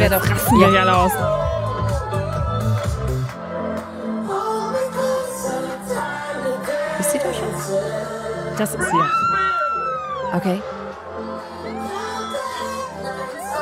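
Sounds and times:
speech: 0:00.0 - 0:01.6, 0:08.6 - 0:09.4, 0:10.3 - 0:10.8
song played by a DJ through big speakers: 0:00.0 - 0:13.6
crowd cheering and whooping: 0:00.2 - 0:02.4, 0:08.8 - 0:13.6.

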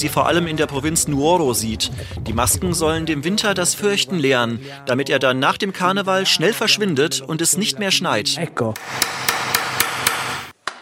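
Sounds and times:
speech: 0:00.0 - 0:09.6
mallet driving a chisel carving a mask from alder wood: 0:08.8 - 0:10.8.

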